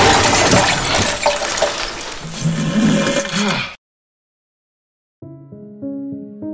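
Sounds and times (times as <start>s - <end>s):
water rushing through a pipe: 0.0s - 3.7s.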